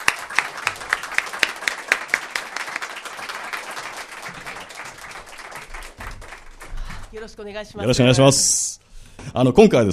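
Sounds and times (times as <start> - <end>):
sharp individual claps: 0.0 - 7.2
live audience applauding: 0.0 - 7.4
speech: 7.1 - 9.9.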